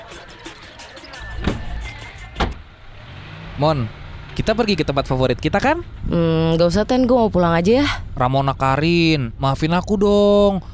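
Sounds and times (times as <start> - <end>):
car door closing thumps: 1.3 - 1.8, 2.4 - 2.6
speech: 3.6 - 10.7.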